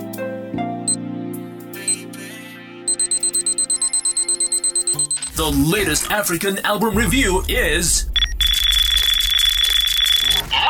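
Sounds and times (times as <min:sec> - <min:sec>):
alarm clock high beeps: 0:02.9 - 0:05.6, 0:08.1 - 0:10.5
alarm clock loud electronic beeps: 0:02.9 - 0:06.0, 0:07.4 - 0:10.5
speech: 0:05.4 - 0:08.1.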